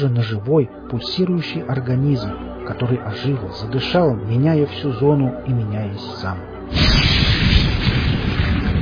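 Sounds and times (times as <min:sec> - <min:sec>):
speech: 0:00.0 - 0:07.2
heavy thunderclap as lightning hits a power plant building: 0:06.7 - 0:08.7.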